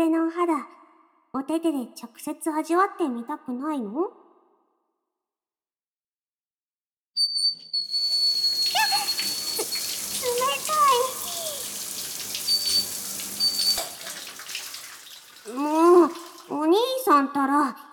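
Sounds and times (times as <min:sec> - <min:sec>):
speech: 0:00.0 - 0:04.2, 0:15.5 - 0:17.8
high squeaky whistle-like tones: 0:07.2 - 0:11.7, 0:12.4 - 0:14.1
cold shower water spraying and splashing onto a body: 0:07.9 - 0:16.6.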